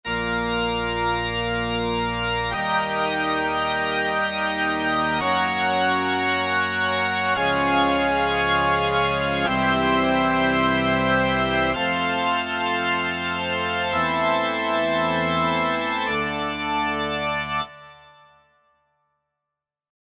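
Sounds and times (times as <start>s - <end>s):
pipe organ: 0.0s - 18.2s.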